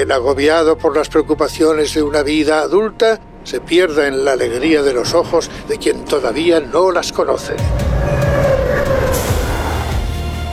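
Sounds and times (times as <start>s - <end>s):
speech: 0.0s - 8.2s
low rumble inside a moving train carriage: 2.3s - 9.9s
thin tonal whine inside a moving train carriage: 3.1s - 10.1s.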